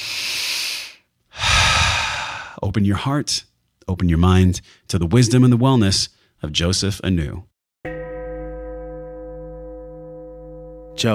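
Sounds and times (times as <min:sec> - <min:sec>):
deep human breath: 0:00.0 - 0:02.6
speech: 0:02.6 - 0:07.5.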